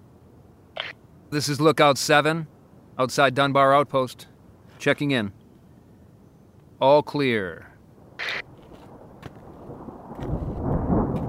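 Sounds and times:
hiss: 0.0 - 10.0
speech: 1.3 - 5.4, 6.8 - 8.4
brief sharp crackle: 8.1 - 11.2
low distant rumble of thunder: 8.2 - 11.2.

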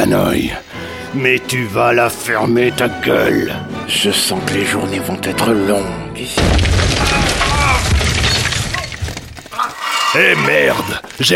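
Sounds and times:
speech: 0.1 - 6.7, 10.2 - 11.3
wall being smashed through and collapsing: 6.4 - 9.6.

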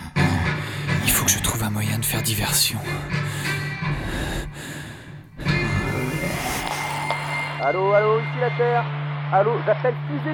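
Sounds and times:
heavy labored breathing with snorting and gasping: 0.0 - 1.0, 2.9 - 7.1
speech: 1.3 - 3.5, 7.6 - 10.3.

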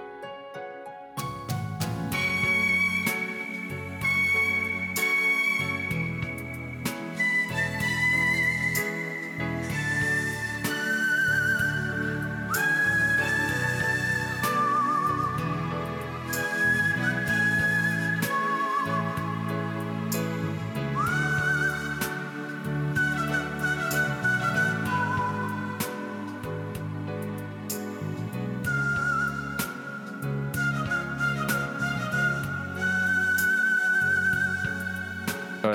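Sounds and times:
full instrumental backing with steady rhythmic bass: 0.0 - 35.7
professional whistler whistling a melody from a 1970s film: 1.6 - 26.8, 28.6 - 35.7.

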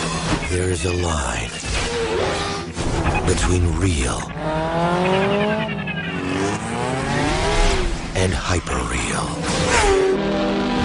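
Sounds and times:
speech: 0.5 - 2.3, 3.3 - 5.6, 8.2 - 10.5
motorcycle engines revving in a film trailer: 1.7 - 8.2, 9.3 - 10.8.

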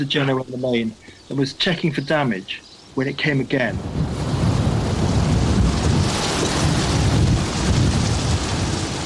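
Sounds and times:
speech: 0.0 - 4.0
strong wind roaring against a sailboat: 3.1 - 9.0.

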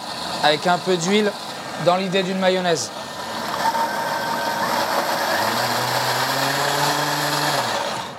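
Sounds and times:
kitchen mixer running at medium speed emulsifying a mayonnaise-style sauce: 0.0 - 8.1
speech: 0.4 - 3.0.

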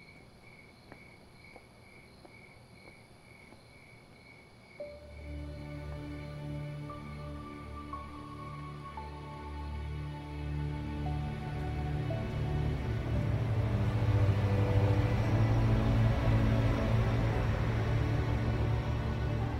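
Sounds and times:
bus engine rumbling and idling: 9.8 - 19.5.

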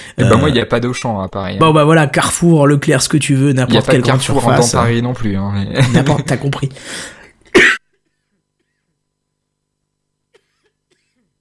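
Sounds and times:
speech: 0.2 - 7.8
man coughing after cutting his microphone: 7.5 - 8.1, 10.3 - 11.3.

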